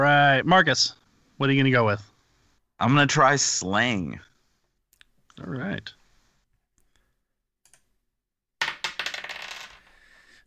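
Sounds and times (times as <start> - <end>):
speech: 0.0 - 2.1, 2.8 - 4.3, 5.4 - 6.0
dice clattering across a hard table in a trivia game: 8.6 - 10.0.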